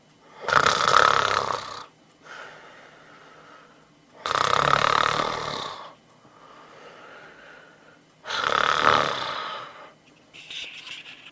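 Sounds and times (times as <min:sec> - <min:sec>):
man snoring loudly with rasping inhales: 0:00.3 - 0:01.9, 0:04.2 - 0:06.0, 0:08.2 - 0:10.0
quieter breathing: 0:02.2 - 0:04.2, 0:05.7 - 0:08.5, 0:09.1 - 0:10.0.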